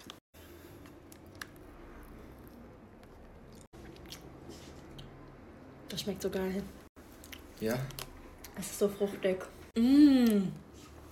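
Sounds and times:
person chewing soft mango ice cream treat: 0.0s - 5.5s, 7.0s - 8.6s
speech: 5.9s - 6.8s, 7.6s - 10.6s.

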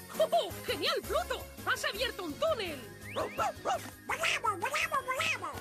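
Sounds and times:
speech: 0.3s - 5.5s
dog barking short yappy barks: 3.1s - 3.9s.

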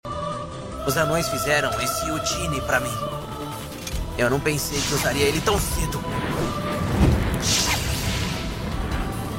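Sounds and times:
speech: 0.8s - 3.6s, 4.2s - 7.8s
steady rumbling background: 2.8s - 9.3s
dull low thump: 6.3s - 7.4s
magic arrow shot with a bright airy whoosh: 6.4s - 8.5s.

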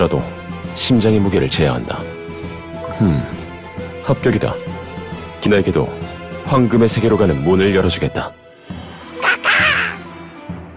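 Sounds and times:
speech: 0.0s - 2.2s, 3.0s - 3.4s, 4.0s - 4.7s, 5.4s - 8.4s
crow cawing: 9.2s - 10.0s.

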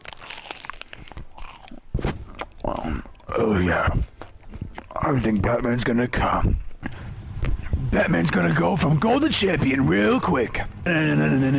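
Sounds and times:
crunchy munching on a crisp rice treat: 0.0s - 5.5s
speech: 3.4s - 4.1s, 5.0s - 6.6s, 7.9s - 11.5s.

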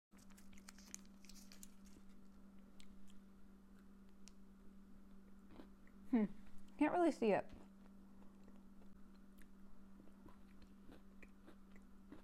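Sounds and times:
crunchy chewing of an Oreo peanut butter cup: 0.2s - 4.4s, 7.6s - 12.2s
steady low electrical hum: 0.2s - 12.2s
speech: 6.1s - 7.6s.

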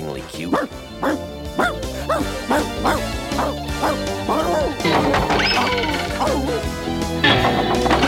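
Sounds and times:
speech: 0.2s - 1.2s
dog barking while running away: 0.5s - 4.8s, 5.4s - 6.7s
dog yelping and whining: 1.0s - 6.7s
busy clattering background: 4.7s - 6.4s, 7.2s - 8.0s.

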